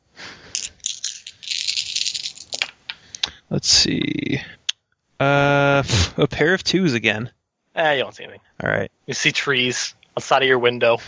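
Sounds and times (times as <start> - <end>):
six dice rattling and clattering across a hard surface: 0.5 - 2.9
speech: 3.5 - 4.6, 5.2 - 11.0.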